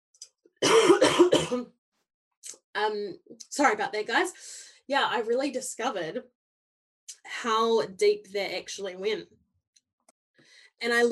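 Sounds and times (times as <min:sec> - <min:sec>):
harsh coughing: 0:00.6 - 0:01.7
speech: 0:01.5 - 0:01.8, 0:02.4 - 0:06.4, 0:07.2 - 0:09.4, 0:10.8 - 0:11.1
short breath: 0:04.4 - 0:04.9, 0:10.4 - 0:10.8.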